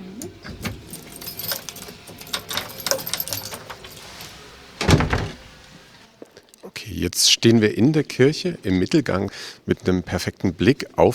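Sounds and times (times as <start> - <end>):
church door lock turning: 0.2 - 5.8
church door opening: 0.2 - 6.0
keys jingling: 0.3 - 5.8
speech: 6.9 - 11.1.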